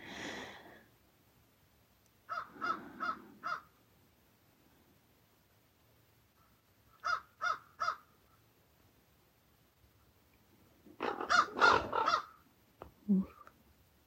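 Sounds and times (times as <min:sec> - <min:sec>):
ravens calling while dive-bombing: 0:02.3 - 0:03.8, 0:06.4 - 0:08.1, 0:11.0 - 0:12.4.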